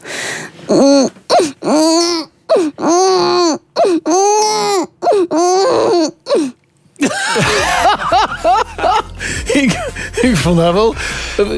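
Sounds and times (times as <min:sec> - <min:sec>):
person imitating a crying baby: 0:00.7 - 0:06.6
laughter: 0:07.0 - 0:10.5
speech: 0:10.5 - 0:11.5.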